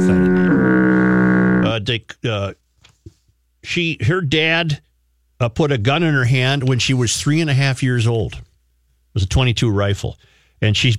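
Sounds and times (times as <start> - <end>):
loud low foghorn blast: 0.0 - 1.8
short bursts of voice: 0.0 - 1.9
speech: 1.8 - 2.6, 3.6 - 8.5, 9.2 - 10.9.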